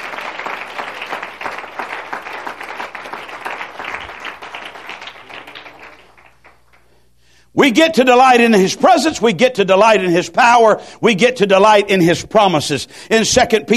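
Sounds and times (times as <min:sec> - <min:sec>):
congregation clapping: 0:00.0 - 0:07.0
speech: 0:07.6 - 0:13.7.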